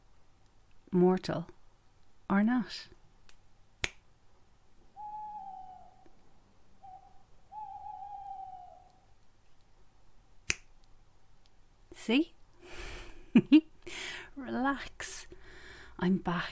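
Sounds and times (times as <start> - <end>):
speech: 0.9 - 1.6, 2.3 - 3.0, 12.1 - 12.4, 13.3 - 13.7, 14.4 - 15.2, 16.0 - 16.4
sharp finger snap: 3.3 - 4.0, 10.5 - 10.7
owl hooting: 4.9 - 9.2.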